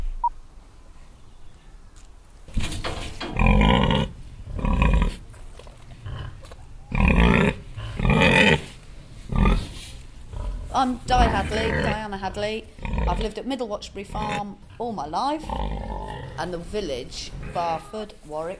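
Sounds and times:
pigs grunting on a farm in an agricultural village: 3.2s - 5.3s, 5.9s - 18.0s
speech: 10.8s - 15.8s, 16.4s - 18.5s.

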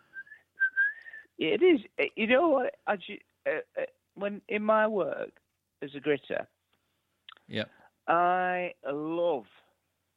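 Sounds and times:
person whistling a tune: 0.0s - 1.3s
speech: 1.4s - 6.5s, 7.5s - 9.6s.

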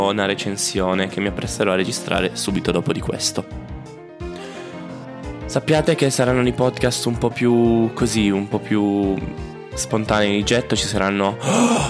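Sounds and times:
speech: 0.0s - 3.6s, 5.5s - 11.8s
sharp breathy gasp: 4.3s - 4.8s, 11.4s - 11.8s.

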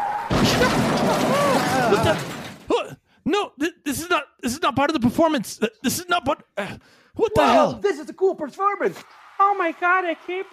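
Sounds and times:
car crashing onto a stage: 0.3s - 2.9s
speech: 0.6s - 2.4s, 4.6s - 10.5s.

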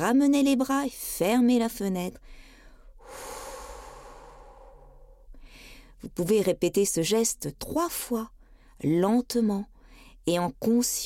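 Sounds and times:
speech: 0.0s - 2.5s, 6.0s - 11.0s
person exhaling through the mouth during a relaxation breathing exercise: 3.0s - 5.2s.

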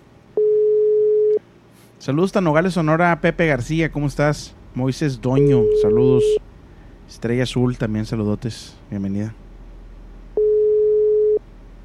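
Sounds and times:
low hum: 0.0s - 11.8s
steady telephone call tone: 0.4s - 1.4s, 5.4s - 6.4s, 10.4s - 11.4s
speech: 2.0s - 6.5s, 7.1s - 9.4s.

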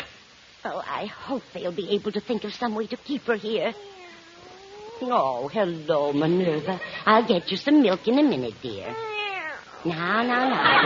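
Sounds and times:
speech: 0.6s - 4.0s, 5.0s - 9.1s, 9.8s - 10.8s
cat meowing: 3.7s - 5.3s, 8.8s - 9.9s.

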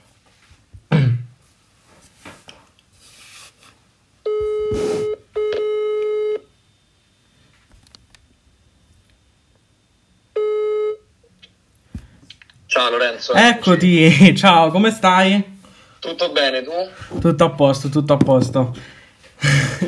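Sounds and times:
steady electronic phone ringing tones: 4.2s - 6.5s, 10.3s - 11.0s
speech: 12.8s - 19.8s
laughter: 19.4s - 19.8s.

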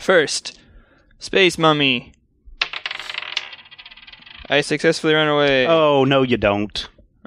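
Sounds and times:
speech: 0.0s - 0.6s, 1.2s - 2.2s, 4.5s - 6.9s
dice rolled across a hard tabletop during a card game: 2.6s - 5.8s.

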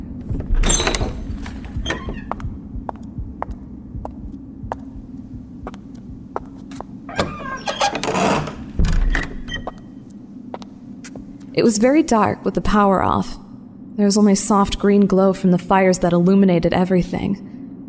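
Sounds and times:
steady low hum: 0.0s - 17.8s
door flung open with a loud clattering bang: 0.4s - 2.3s, 7.1s - 9.7s
speech: 11.6s - 13.4s, 14.0s - 17.5s.

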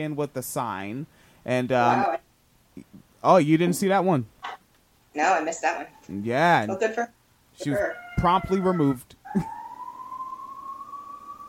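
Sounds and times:
speech: 0.0s - 2.2s, 2.8s - 4.3s, 5.2s - 9.6s
emergency vehicle siren wailing: 7.6s - 11.4s.

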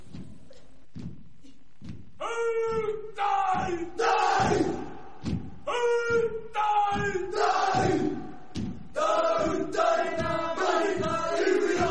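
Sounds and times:
heavy thumps of stamping or slapping: 2.7s - 11.9s
crowd of voices bellowing a Maori haka war chant in unison: 3.2s - 5.9s, 6.6s - 11.9s.

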